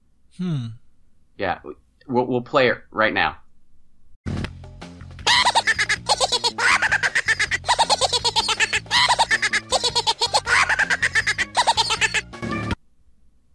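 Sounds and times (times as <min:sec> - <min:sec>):
speech: 0:00.4 - 0:00.8, 0:01.4 - 0:03.4
jack-in-the-box toy-like cackling laugh: 0:05.3 - 0:12.4.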